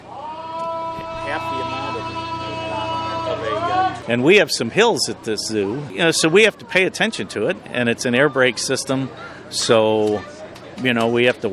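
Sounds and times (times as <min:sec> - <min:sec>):
zoo train 60-horsepower four-cylinder motor chugging while pulling six cars: 0:00.0 - 0:07.0
indistinct voices murmuring: 0:00.0 - 0:11.5
speech: 0:01.3 - 0:01.7, 0:04.0 - 0:11.5.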